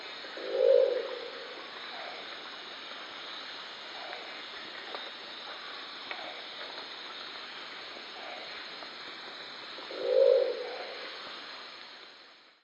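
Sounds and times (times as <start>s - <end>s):
crested owl: 0.4s - 1.3s, 9.9s - 10.9s.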